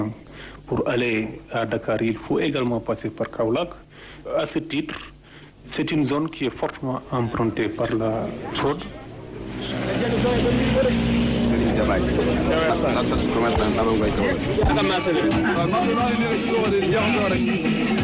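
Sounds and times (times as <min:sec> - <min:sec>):
speech: 0:00.0 - 0:09.0, 0:11.9 - 0:17.8
crowd of overlapping voices on a market street in Kaolack: 0:07.0 - 0:18.0
motorcycle taxi engines revving on a busy central market street in Kaolack: 0:08.2 - 0:15.0.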